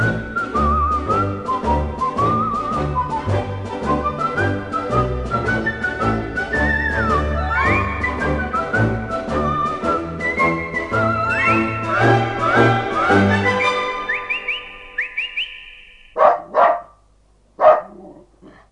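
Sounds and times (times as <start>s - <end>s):
whistled gliding tune: 0.0s - 16.3s
dog barking: 16.2s - 17.0s, 17.6s - 18.6s.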